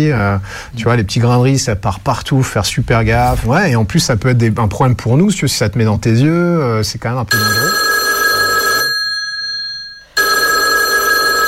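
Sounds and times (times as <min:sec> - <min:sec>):
speech: 0:00.0 - 0:07.9
telephone ringing with an electronic trill: 0:07.3 - 0:11.4.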